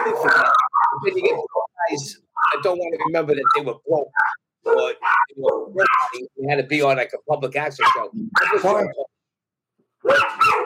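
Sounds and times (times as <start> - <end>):
dogs barking at a doorbell: 0.0 - 1.6, 2.3 - 2.8, 3.4 - 6.3, 7.8 - 8.8, 10.0 - 10.6
speech: 0.1 - 9.1, 10.0 - 10.6.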